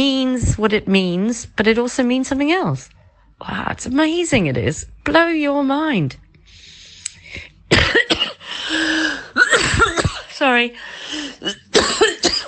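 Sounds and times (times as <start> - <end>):
speech: 0.0 - 6.6, 10.4 - 12.2
harsh coughs: 7.7 - 10.4, 11.2 - 12.4.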